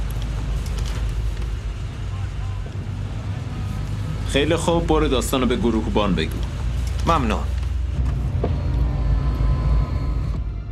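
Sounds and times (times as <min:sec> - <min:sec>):
car driving in with low engine rumble: 0:00.0 - 0:10.7
road noise: 0:00.0 - 0:10.7
speech: 0:04.3 - 0:07.6.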